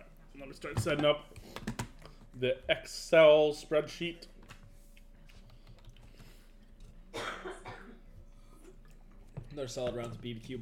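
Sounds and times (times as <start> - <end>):
low room noise: 0.0 - 10.6
speech: 0.4 - 1.7, 2.4 - 4.3, 9.6 - 10.6
harsh cough: 7.1 - 8.1.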